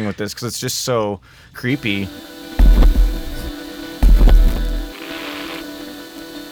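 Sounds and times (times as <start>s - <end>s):
speech: 0.0s - 3.0s
crackly static distortion from piezo and amp pickup: 1.8s - 6.5s
low electric hum: 2.6s - 4.9s.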